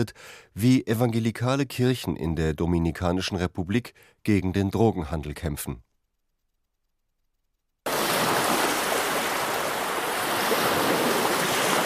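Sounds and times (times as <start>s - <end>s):
speech: 0.0s - 5.9s
ocean waves breaking on a beach: 7.9s - 11.8s.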